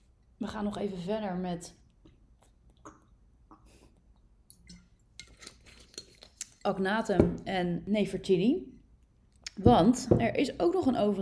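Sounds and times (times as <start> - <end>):
speech: 0.4 - 1.8, 6.6 - 8.7, 9.6 - 11.2
person sipping water with mouth clicks and gulps: 2.0 - 6.7.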